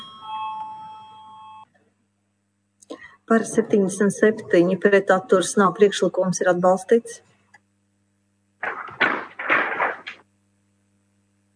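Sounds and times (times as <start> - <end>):
electric bell in a parliament chamber calling members to vote: 0.0 - 1.7
faint low hum: 0.0 - 11.5
speech: 3.3 - 7.3.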